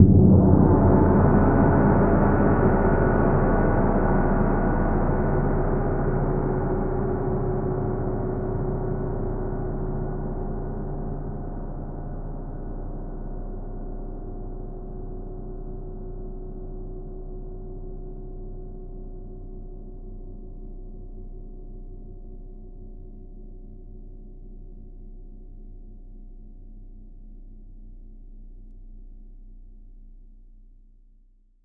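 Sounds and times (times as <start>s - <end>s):
huge metal gong: 0.0s - 15.8s.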